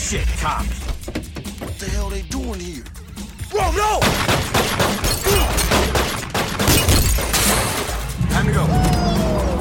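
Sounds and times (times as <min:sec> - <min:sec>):
speech: 0:00.1 - 0:01.2, 0:01.8 - 0:03.0, 0:03.5 - 0:05.4, 0:08.4 - 0:09.4
car window glass shattering as a man punches it out: 0:06.7 - 0:07.9.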